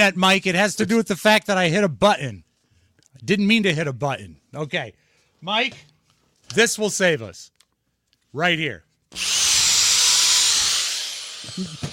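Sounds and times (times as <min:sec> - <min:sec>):
speech: 0:00.0 - 0:02.5, 0:03.2 - 0:05.9, 0:06.5 - 0:07.5, 0:08.3 - 0:09.4, 0:11.5 - 0:11.9
corded electric drill whining: 0:09.1 - 0:11.9.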